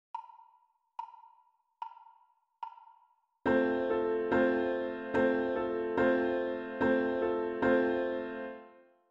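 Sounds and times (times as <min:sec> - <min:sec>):
solo piano bass rhythm: 0:03.5 - 0:08.6.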